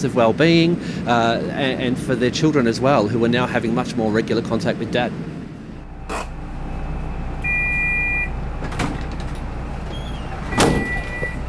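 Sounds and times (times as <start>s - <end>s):
speech: 0.0s - 5.4s
bus engine idling: 0.0s - 11.4s
sharp clunk: 10.5s - 11.4s.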